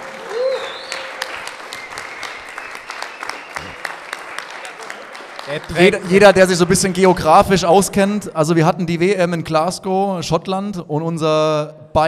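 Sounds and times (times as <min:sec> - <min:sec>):
audience applause for a team mechanic: 0:00.0 - 0:07.3
speech: 0:05.5 - 0:12.0.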